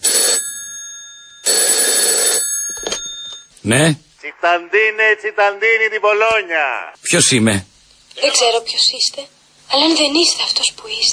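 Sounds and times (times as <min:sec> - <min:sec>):
telephone bell ringing: 0:00.0 - 0:03.5
speech: 0:03.6 - 0:11.1.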